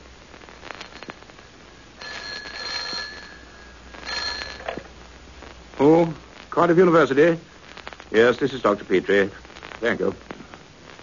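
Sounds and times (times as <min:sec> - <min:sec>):
hiss: 0:00.0 - 0:11.0
telephone ringing: 0:02.0 - 0:04.9
speech: 0:05.8 - 0:07.5, 0:08.1 - 0:10.3.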